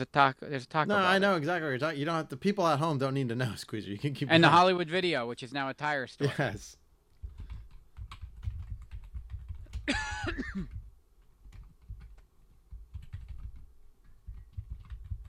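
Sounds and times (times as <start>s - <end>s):
speech: 0.0s - 6.8s, 9.9s - 10.7s
typing on a computer keyboard: 7.2s - 9.9s, 10.7s - 15.2s
throat clearing: 9.8s - 10.7s.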